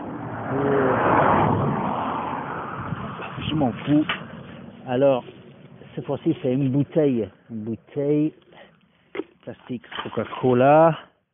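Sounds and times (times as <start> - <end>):
car passing by on a road: 0.0 - 6.6
speech: 0.5 - 0.8, 3.6 - 4.2, 4.9 - 5.4, 6.0 - 8.4, 9.5 - 11.1.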